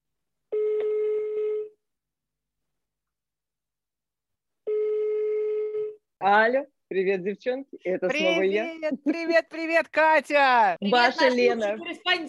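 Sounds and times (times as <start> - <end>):
telephone dialing and ringing tones during an outgoing call: 0.5 - 1.8, 4.7 - 6.0
speech: 6.2 - 12.2.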